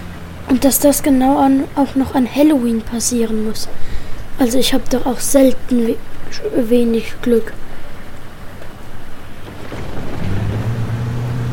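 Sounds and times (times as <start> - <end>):
bus engine running rough while being driven: 0.0 - 3.7, 9.4 - 11.5
speech: 0.5 - 7.6.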